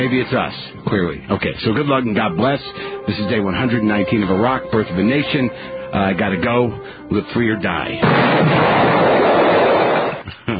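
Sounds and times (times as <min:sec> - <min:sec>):
speech: 0:00.0 - 0:09.0
roar of blasts and rumbling explosions: 0:08.0 - 0:10.2.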